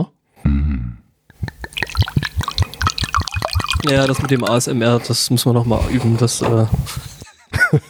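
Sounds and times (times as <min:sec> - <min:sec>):
wine glugging from a bottle into a glass: 0:01.4 - 0:07.2
speech: 0:03.8 - 0:07.1.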